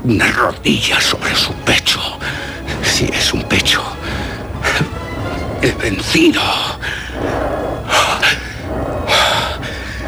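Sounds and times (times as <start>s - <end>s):
speech: 0.0s - 2.4s, 3.0s - 4.0s, 5.6s - 8.4s
steady hissing noise bed: 0.0s - 10.0s
heavy panting from someone out of breath after a struggle: 1.0s - 10.0s.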